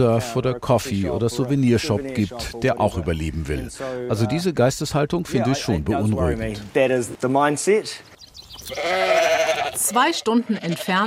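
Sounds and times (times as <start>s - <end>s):
speech: 0.0s - 11.0s
sheep bleating: 8.6s - 11.0s.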